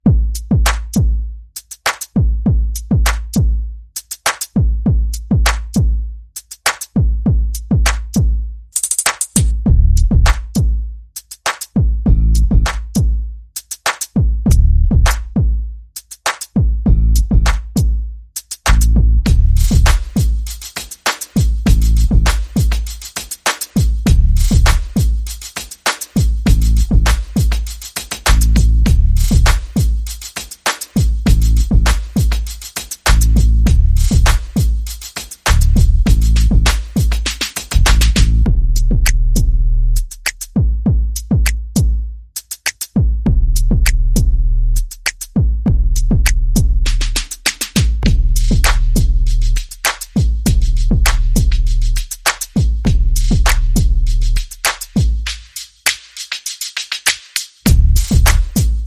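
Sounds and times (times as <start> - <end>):
percussion: 0.0 - 58.8
bass: 9.4 - 11.0, 11.9 - 13.4, 14.3 - 15.8, 16.7 - 20.6, 21.6 - 22.8, 24.0 - 25.4, 26.4 - 27.6, 28.2 - 30.2, 31.2 - 32.3, 33.0 - 34.7, 35.5 - 37.0, 37.7 - 42.3, 43.0 - 55.5, 57.6 - 58.8.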